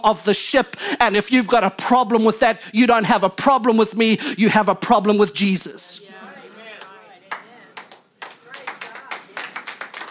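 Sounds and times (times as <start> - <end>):
speech: 0.0 - 6.3
audience clapping: 6.7 - 10.0.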